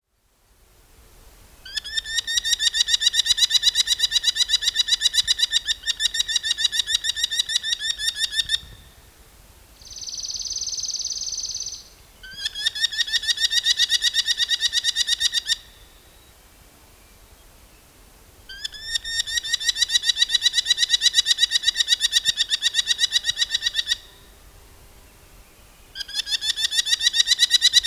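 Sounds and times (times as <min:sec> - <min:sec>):
Falco columbarius merlin calling: 0:01.6 - 0:09.0, 0:09.8 - 0:16.3, 0:18.5 - 0:24.4, 0:25.6 - 0:27.8.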